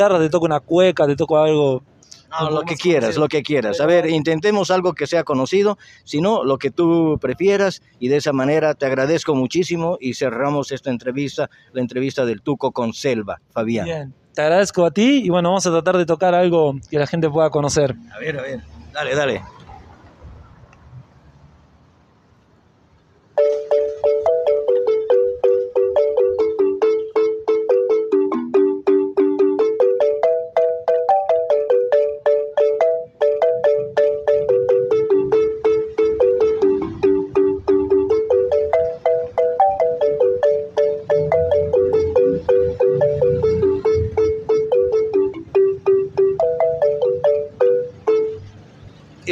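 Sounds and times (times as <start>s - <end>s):
speech: 0.0s - 19.6s
balafon played live with quick bright melody: 2.6s - 4.2s, 23.3s - 48.9s.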